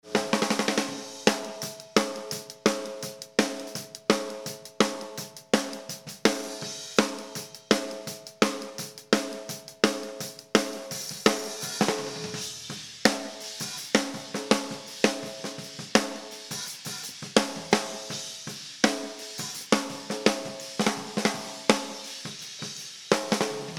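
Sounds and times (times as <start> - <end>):
compressed snare drum: 0.0 - 23.7.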